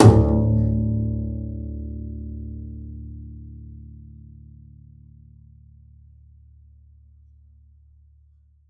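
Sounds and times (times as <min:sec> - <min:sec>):
double bass pizzicato: 0:00.0 - 0:04.4.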